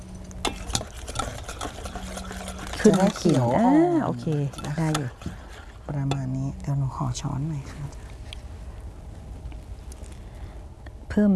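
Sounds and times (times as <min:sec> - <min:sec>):
whisk clicking and tapping against the bowl sides: 0:00.0 - 0:06.7
whisk stirring a pale green mixture in a bowl: 0:00.0 - 0:08.0
speech: 0:02.8 - 0:05.3, 0:05.9 - 0:08.0, 0:11.2 - 0:11.3.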